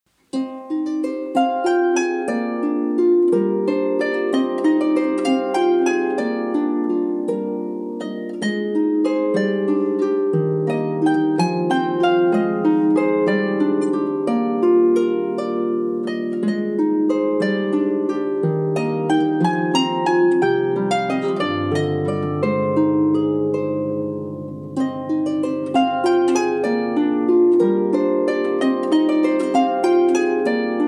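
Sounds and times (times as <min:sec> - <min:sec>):
harp: 0:00.2 - 0:30.8.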